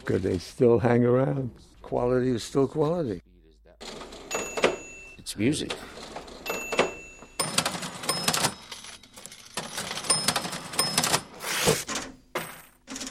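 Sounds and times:
speech: 0:00.0 - 0:04.0, 0:05.3 - 0:05.9
old mechanical cash register bright metallic rings: 0:03.8 - 0:11.6
old mechanical cash register key presses and ratcheting clunks: 0:03.8 - 0:13.0.

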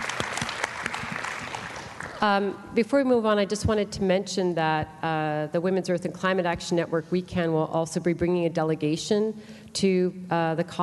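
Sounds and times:
audience clapping: 0:00.0 - 0:02.2
speech: 0:02.2 - 0:10.8.

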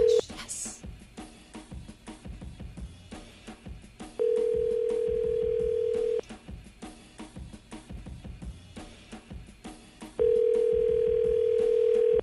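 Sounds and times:
outgoing phone call ringback tone: 0:00.0 - 0:00.2, 0:04.2 - 0:06.2, 0:10.2 - 0:12.2.

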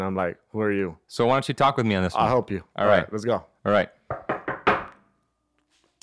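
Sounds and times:
speech: 0:00.0 - 0:04.0
knocking on a door: 0:04.1 - 0:05.0.

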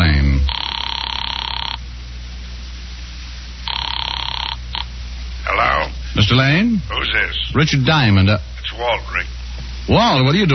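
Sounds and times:
telephone ringing through the handset line of a call from a phone booth: 0:00.5 - 0:01.8, 0:03.6 - 0:04.9
speech: 0:06.3 - 0:10.5.

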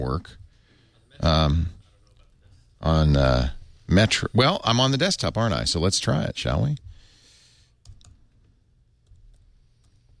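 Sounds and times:
speech: 0:00.1 - 0:00.4, 0:01.1 - 0:01.8, 0:02.8 - 0:06.8
quiet typing on a computer keyboard: 0:07.8 - 0:10.0.

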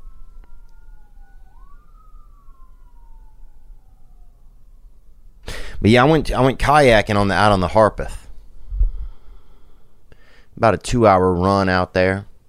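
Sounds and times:
police car siren wailing: 0:00.0 - 0:09.2
steady low traffic rumble: 0:00.0 - 0:10.1
speech: 0:05.8 - 0:08.2, 0:10.6 - 0:12.3.

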